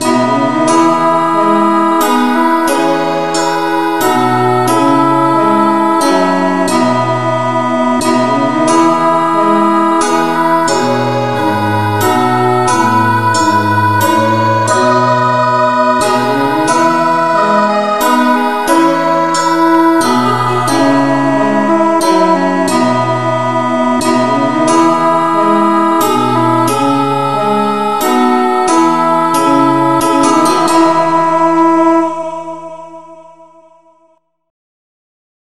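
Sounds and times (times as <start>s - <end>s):
instrumental music in key E: 0.0s - 33.0s.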